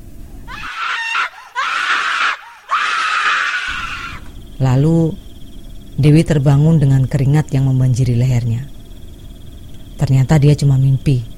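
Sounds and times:
woman screaming loudly and shrilly: 0:00.5 - 0:04.3
speech: 0:04.6 - 0:05.2, 0:06.0 - 0:08.7, 0:10.0 - 0:11.3.

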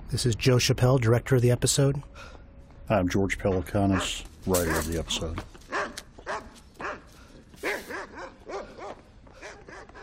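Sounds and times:
speech: 0:00.1 - 0:05.6
shepherd dog barking: 0:03.5 - 0:05.0, 0:05.7 - 0:10.0.

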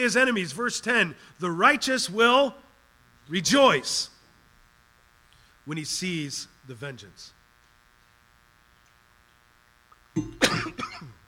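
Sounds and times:
speech: 0:00.0 - 0:02.6, 0:03.3 - 0:04.1, 0:05.6 - 0:07.4, 0:10.2 - 0:11.1
person coughing: 0:10.2 - 0:11.2.

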